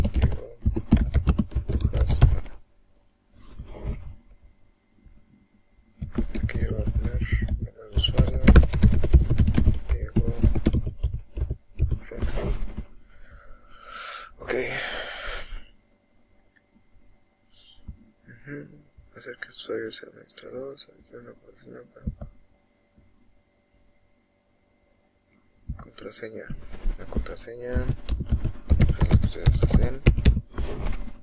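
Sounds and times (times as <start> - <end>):
computer keyboard typing a name into a user account form: 0.0 - 2.6, 6.0 - 12.0, 27.0 - 30.5
speech: 19.2 - 22.2, 26.0 - 28.4, 29.3 - 31.0.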